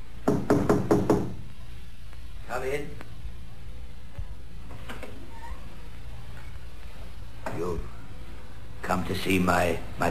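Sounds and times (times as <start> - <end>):
firm knocks on a wooden cottage door: 0.2 - 1.4
speech: 2.6 - 3.0, 9.0 - 10.1.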